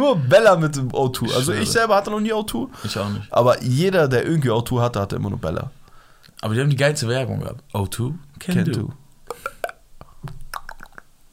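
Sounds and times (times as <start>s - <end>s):
speech: 0.0s - 5.8s, 6.4s - 9.5s
laughter: 1.3s - 1.8s
person imitating water bubbling into a glass with mouth sounds: 9.2s - 11.3s.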